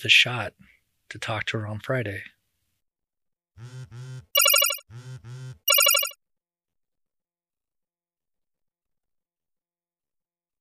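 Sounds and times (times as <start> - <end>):
speech: 0.0 - 2.4, 3.6 - 5.7
mobile phone ringtone with repeating electronic melody: 3.9 - 6.2.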